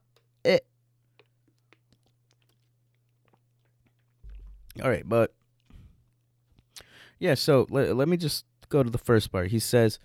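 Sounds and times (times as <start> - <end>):
low steady hum: 0.0 - 10.0
speech: 0.4 - 0.7, 4.8 - 5.4, 7.2 - 10.0
person sipping water: 1.0 - 4.7.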